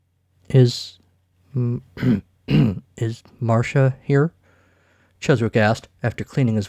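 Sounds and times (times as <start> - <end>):
speech: 0.5 - 4.4, 5.2 - 6.6
man clearing his throat: 1.6 - 3.0.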